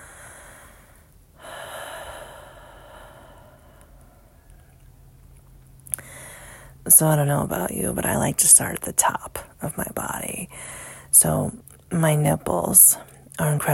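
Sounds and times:
slow exhale during a guided breathing exercise: 0.0 - 4.5, 6.0 - 6.8
speech: 6.9 - 13.7.

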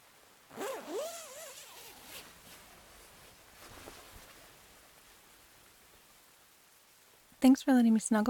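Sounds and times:
sleeping bag zipper being zipped closed: 0.5 - 2.5
fabric rustling: 0.5 - 4.8
faint shuffling: 0.5 - 5.5
speech: 7.4 - 8.2.

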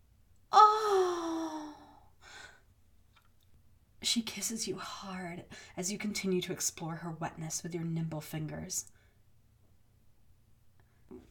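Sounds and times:
person imitating a woman's gasping cry of pleasure: 0.5 - 2.0
speech: 4.0 - 9.0.

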